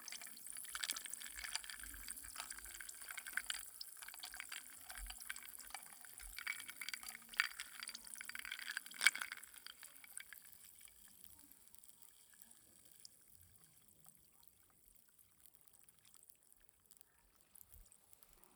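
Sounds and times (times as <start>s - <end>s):
drink swirling in a glass: 0.0s - 10.4s
ice cubes clinking against a glass as a drink is stirred: 0.1s - 10.5s.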